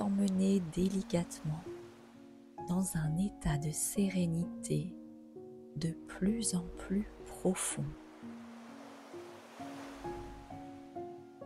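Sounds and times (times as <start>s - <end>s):
soft ocean waves breaking on shore: 0.0s - 2.3s, 6.6s - 11.2s
speech: 0.3s - 1.7s, 2.7s - 5.0s, 5.8s - 8.0s.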